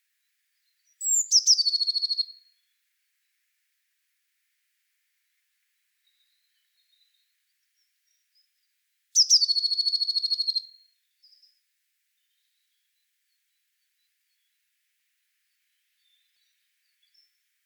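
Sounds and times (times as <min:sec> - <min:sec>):
Eurasian blue tit Cyanistes caeruleus trilling: 0:01.0 - 0:02.2, 0:09.2 - 0:10.1.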